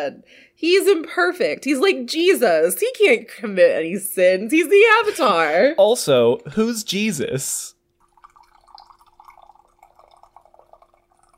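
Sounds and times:
speech: 0.0 - 7.8
tea being poured into a cup: 8.0 - 11.3.

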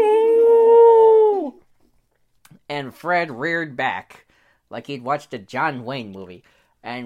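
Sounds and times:
human voice imitating a wolf howling in pain: 0.0 - 1.6
speech: 2.7 - 7.0.

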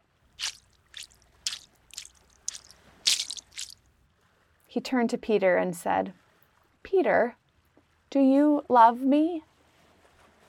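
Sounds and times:
stone skipping across calm lake water: 0.4 - 3.8
speech: 4.8 - 6.2, 6.9 - 7.4, 8.1 - 9.5.

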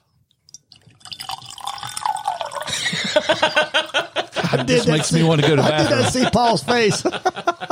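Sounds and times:
whisky glugging into a Glencairn glass: 0.4 - 2.9
laughter: 2.7 - 7.7
speech: 3.3 - 7.7.

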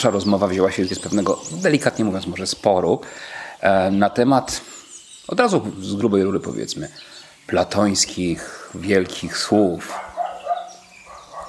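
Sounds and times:
speech: 0.0 - 4.7, 5.3 - 10.1
dog barking short sharp yaps: 9.9 - 11.4.

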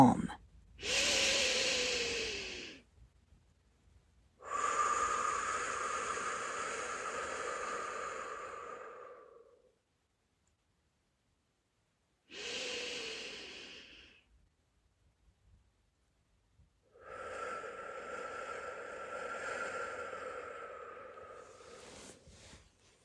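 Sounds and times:
deep breaths in through nose and out through mouth: 0.8 - 2.9, 4.4 - 9.7, 12.3 - 14.3, 16.9 - 23.0.

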